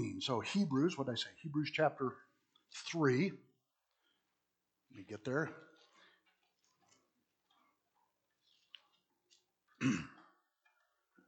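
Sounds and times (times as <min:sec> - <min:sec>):
speech: 0:00.0 - 0:03.5, 0:04.9 - 0:05.7, 0:09.8 - 0:10.2
throat clearing from a cookie stuck in the throat: 0:09.8 - 0:10.4.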